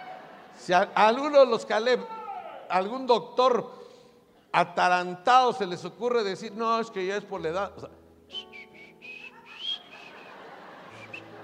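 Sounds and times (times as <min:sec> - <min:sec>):
laughter: 0:00.0 - 0:00.9, 0:09.3 - 0:11.4
speech: 0:00.6 - 0:03.8, 0:04.5 - 0:08.4
person whistling short high notes: 0:08.3 - 0:10.3.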